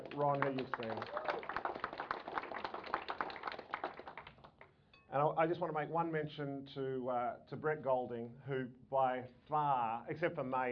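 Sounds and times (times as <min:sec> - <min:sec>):
crowd clapping at an event with speakers: 0:00.0 - 0:04.7
speech: 0:00.2 - 0:01.6, 0:05.1 - 0:10.6.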